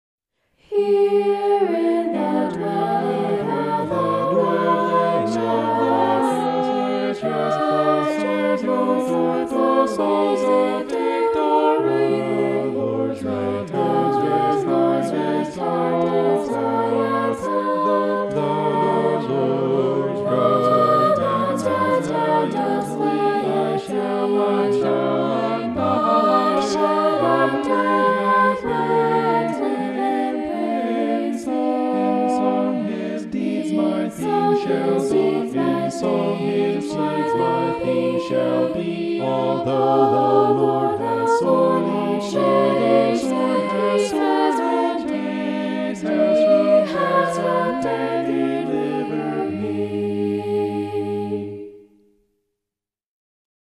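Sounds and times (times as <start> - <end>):
polyphonic vocals: 0.6 - 52.0.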